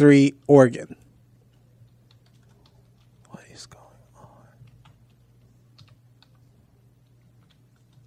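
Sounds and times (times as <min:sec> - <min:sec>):
speech: 0:00.0 - 0:01.0
typing on a computer keyboard: 0:01.5 - 0:03.5, 0:04.4 - 0:08.0.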